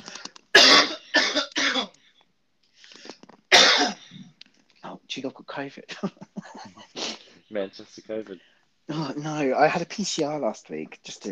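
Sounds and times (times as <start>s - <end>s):
person coughing harshly: 0.5s - 2.0s, 3.5s - 4.3s
speech: 5.2s - 6.8s, 7.5s - 11.2s.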